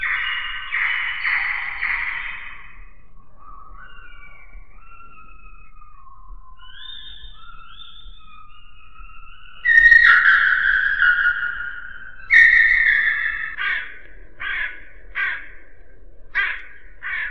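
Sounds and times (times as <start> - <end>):
crow cawing over the roof of a house: 0.0 - 2.9, 9.6 - 17.2.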